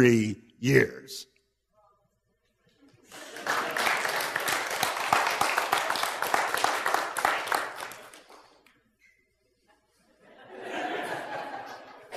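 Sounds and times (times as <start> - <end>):
speech: 0.0 - 1.3
audience laughter: 3.0 - 4.2, 9.6 - 12.1
audience applause: 3.0 - 8.6.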